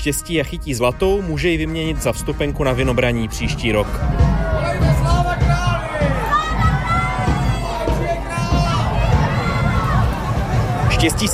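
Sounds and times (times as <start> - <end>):
speech: 0.0 - 4.4, 11.0 - 11.3
large lively outdoor crowd voices: 3.5 - 11.3
children shouting: 4.1 - 11.0.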